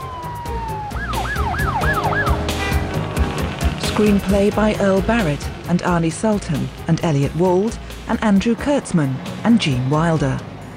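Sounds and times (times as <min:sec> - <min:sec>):
ambulance and fire engine sirens wailing while speeding past: 0:00.0 - 0:04.2
traffic rumble: 0:00.0 - 0:10.7
speech: 0:04.0 - 0:10.5.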